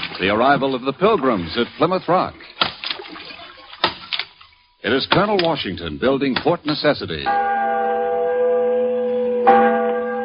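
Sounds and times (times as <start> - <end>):
speech: 0.2 - 2.4, 4.8 - 8.1
great bell ringing: 7.2 - 10.2.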